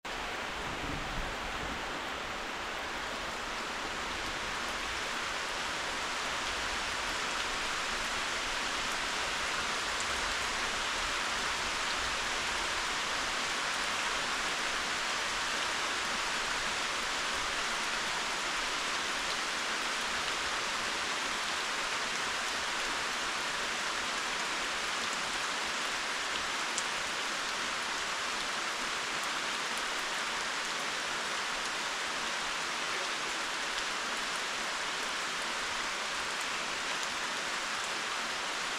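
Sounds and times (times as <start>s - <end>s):
heavy rain in forest at night: 0.0s - 38.7s.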